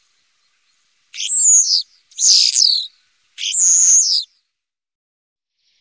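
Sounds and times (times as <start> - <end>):
common starling song: 1.2 - 4.2.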